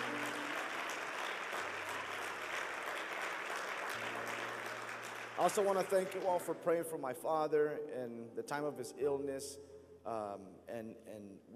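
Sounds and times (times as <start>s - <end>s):
large crowd applauding: 0.0s - 6.8s
speech: 5.4s - 11.5s.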